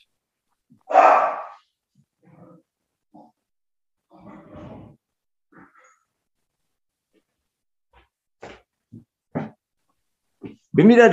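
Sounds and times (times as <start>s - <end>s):
dog barking: 0.8s - 1.6s
speech: 10.8s - 11.1s.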